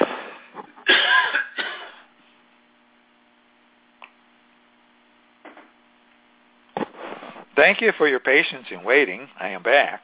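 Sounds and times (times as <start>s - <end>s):
low electrical hum: 0.0s - 10.0s
person coughing: 0.8s - 2.1s
speech: 7.6s - 10.0s.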